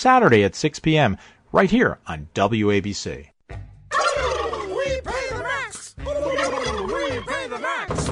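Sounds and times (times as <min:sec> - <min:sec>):
speech: 0:00.0 - 0:03.6
flock of turkeys gobbling: 0:03.9 - 0:07.6.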